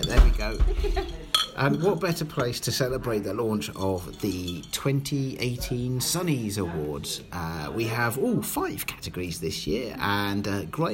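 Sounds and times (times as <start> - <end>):
ice cubes clinking in a glass: 0.0 - 5.3
speech: 0.1 - 10.9.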